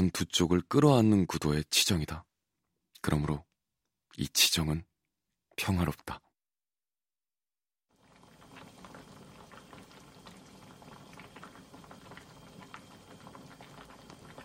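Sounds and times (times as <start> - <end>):
speech: 0.0 - 2.3, 3.0 - 3.5, 4.1 - 4.9, 5.6 - 6.2
pot of soup at a rolling boil: 7.9 - 14.4.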